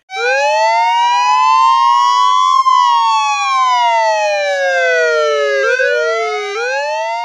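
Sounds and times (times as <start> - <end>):
police car sirens wailing arriving at a cemetery: 0.1 - 7.2.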